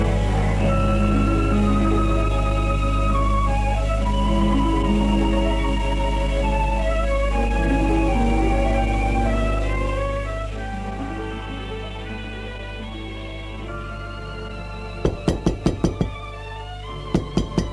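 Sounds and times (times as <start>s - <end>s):
soft music: 0.0s - 17.7s
maid knocking sharply on a door: 15.1s - 16.2s, 17.2s - 17.7s.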